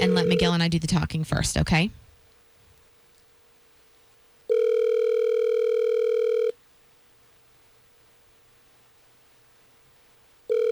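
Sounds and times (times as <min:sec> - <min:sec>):
outgoing phone call electronic ring tone in earpiece: 0:00.0 - 0:00.6, 0:04.5 - 0:06.6, 0:10.5 - 0:10.7
speech: 0:00.0 - 0:02.0.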